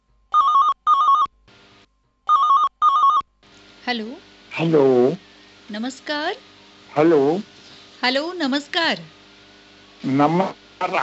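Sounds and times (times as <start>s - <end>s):
telephone ringing for an incoming call: 0.4s - 1.3s, 2.3s - 3.2s
speech: 3.9s - 9.2s, 10.0s - 11.0s.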